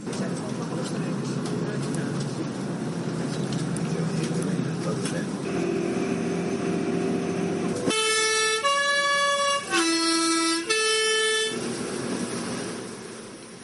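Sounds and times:
steady rumble of bus engine and road noise: 0.0s - 13.6s
multi-tone horn on a Grindelwald bus in Switzerland on narrow mountain roads: 5.4s - 12.2s.

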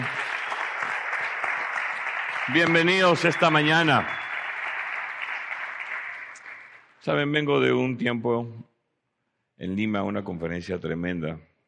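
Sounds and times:
crowd applause: 0.0s - 6.9s
speech: 2.5s - 4.2s, 7.0s - 8.7s, 9.6s - 11.5s.

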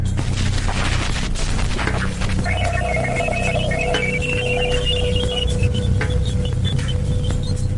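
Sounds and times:
Jupiter radio emissions static crackling with popping bursts: 0.2s - 7.7s
thin wavering tones in Jupiter radio emissions: 2.4s - 7.2s.

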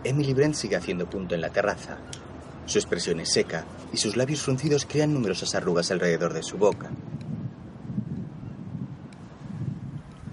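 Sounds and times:
speech: 0.0s - 7.1s
wind blowing in gentle gusts: 0.0s - 10.3s.

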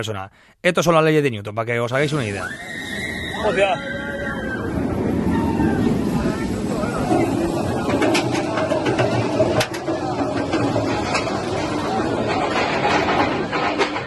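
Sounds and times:
speech: 0.0s - 2.8s, 3.4s - 4.0s
crowd noise: 2.0s - 14.0s
roller coaster riders screaming: 2.4s - 7.4s.

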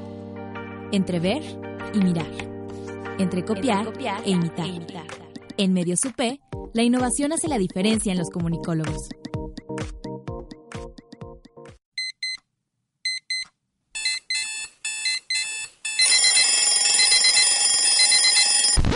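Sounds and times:
speech: 0.9s - 2.5s, 3.1s - 9.2s
alarm clock chiming, beeping and electronic ringing: 14.0s - 18.8s.

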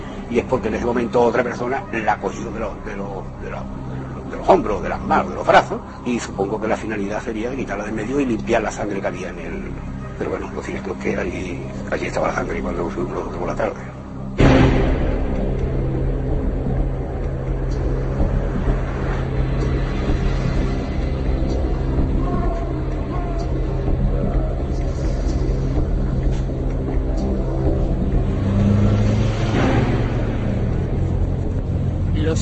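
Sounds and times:
speech: 0.3s - 14.0s
car engine approaching a farmhouse and revving: 14.4s - 32.4s.

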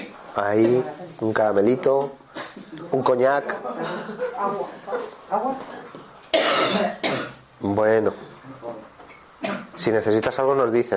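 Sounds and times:
speech: 0.4s - 5.9s, 6.6s - 10.9s
woman coughing: 6.3s - 7.4s, 9.4s - 9.8s.

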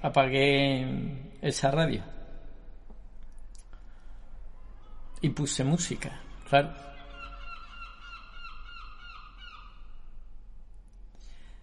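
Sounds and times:
speech: 0.0s - 2.2s, 5.2s - 6.9s
seagulls on an island squawking: 6.0s - 10.1s.

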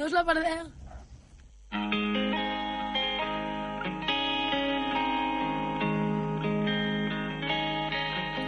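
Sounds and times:
speech: 0.0s - 0.8s
pop song intro with bright chorus-washed guitar chords: 1.7s - 8.4s.

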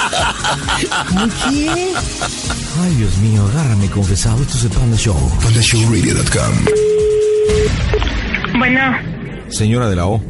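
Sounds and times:
laughter: 0.0s - 2.9s
speech: 0.1s - 6.9s, 7.5s - 10.2s
telephone busy tone beeps after a hang-up: 6.7s - 7.7s.

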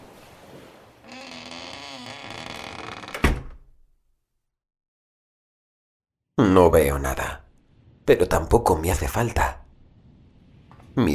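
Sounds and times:
door creaking and groaning as it swings slowly shut: 1.0s - 3.8s
door closing with a solid thud: 3.1s - 3.8s
speech: 6.5s - 7.3s, 8.1s - 9.6s, 11.0s - 11.1s.

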